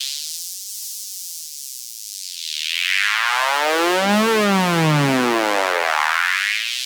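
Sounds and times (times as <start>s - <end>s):
techno trance sound effect: 3.3s - 6.2s.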